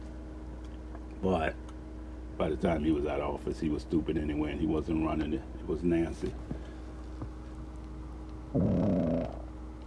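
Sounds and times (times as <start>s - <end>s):
speech: 1.2s - 1.7s, 2.4s - 6.6s
dog grumbling: 8.5s - 9.5s.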